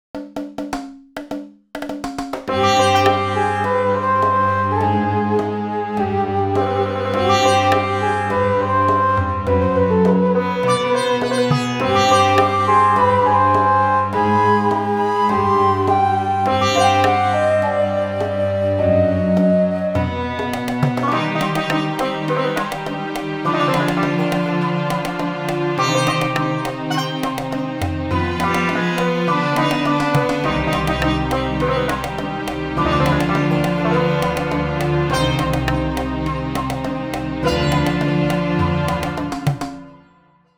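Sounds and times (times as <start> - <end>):
ethnic music from India: 2.0 - 40.5.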